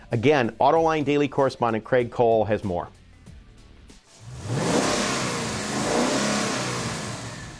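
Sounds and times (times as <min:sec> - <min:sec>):
speech: 0:00.1 - 0:03.0
Ford 5-liter 302 V8 engine revving: 0:04.1 - 0:07.5.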